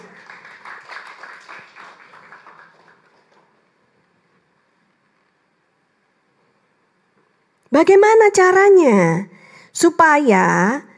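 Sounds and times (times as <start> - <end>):
crowd cheering: 0.0 - 3.2
crowd clapping: 0.0 - 3.7
speech: 7.7 - 10.9.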